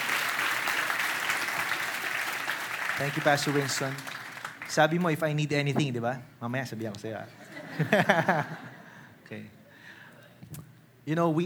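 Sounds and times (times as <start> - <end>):
audience applause in a church: 0.0 - 4.8
speech: 3.0 - 8.7, 9.3 - 9.6, 10.5 - 11.4
laughter: 7.4 - 9.0.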